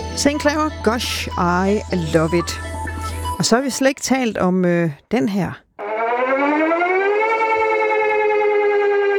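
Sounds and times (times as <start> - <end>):
speech: 0.2 - 2.8, 3.4 - 5.7
civil defense warning siren wailing: 5.8 - 9.1.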